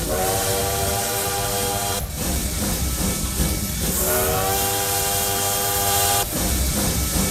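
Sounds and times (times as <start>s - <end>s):
loud steam train whistle blasts: 0.0s - 2.2s, 3.9s - 6.4s
constant hissing rumbling train noise: 0.0s - 7.2s.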